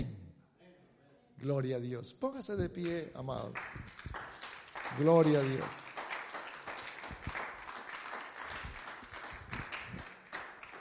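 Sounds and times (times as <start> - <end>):
speech: 1.4 - 4.2, 4.9 - 5.8
church audience applauding half-heartedly: 2.8 - 10.7.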